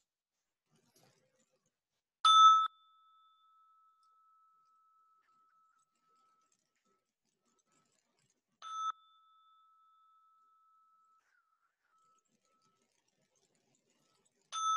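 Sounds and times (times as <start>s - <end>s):
bell struck with long humming ring: 2.3s - 4.2s, 8.6s - 9.8s, 14.6s - 14.7s.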